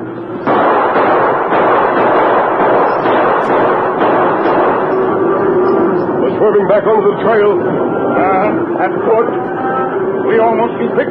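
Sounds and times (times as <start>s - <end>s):
gunshots fired over a stampeding cattle herd: 0.4s - 6.2s
speech: 6.5s - 9.6s, 10.3s - 11.0s.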